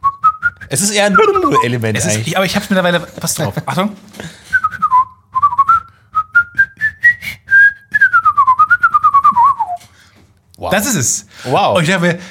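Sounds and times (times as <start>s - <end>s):
person whistling a melody mimicking an oboe line: 0.0s - 1.7s, 4.5s - 9.9s
speech: 0.7s - 4.4s, 10.7s - 12.2s.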